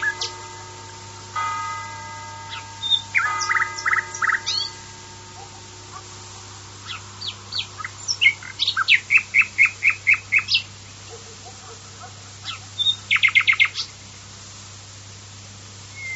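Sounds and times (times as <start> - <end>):
common nightingale singing: 0.0 - 6.1, 6.8 - 11.1, 12.4 - 14.0, 15.9 - 16.1.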